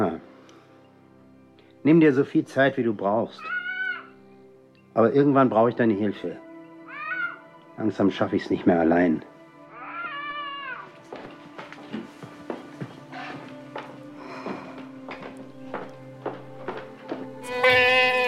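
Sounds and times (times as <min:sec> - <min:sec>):
speech: 0:01.8 - 0:03.6, 0:05.0 - 0:06.4, 0:07.8 - 0:09.3
young goat bleating: 0:03.4 - 0:04.1, 0:06.9 - 0:07.4, 0:09.7 - 0:10.9, 0:17.4 - 0:18.2.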